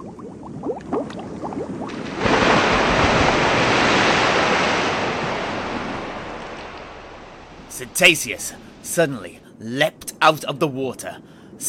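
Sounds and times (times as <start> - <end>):
sea waves crashing: 1.6 - 10.9
speech: 7.8 - 11.6.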